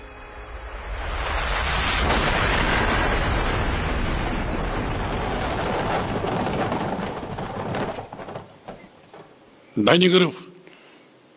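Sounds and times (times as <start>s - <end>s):
explosive blasting of mountains in the Southern Alps: 1.3s - 8.1s
speech: 9.8s - 10.4s.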